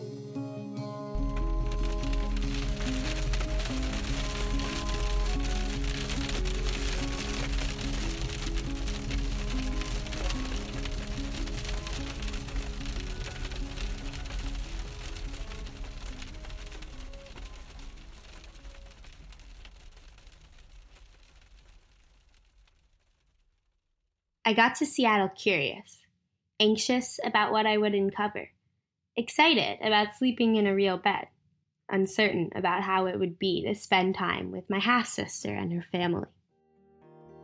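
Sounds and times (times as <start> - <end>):
soft musical tones: 0.0 - 17.6
hail drumming on a car roof: 1.2 - 23.5
speech: 24.5 - 26.0, 26.6 - 28.6, 29.2 - 31.3, 31.9 - 36.4.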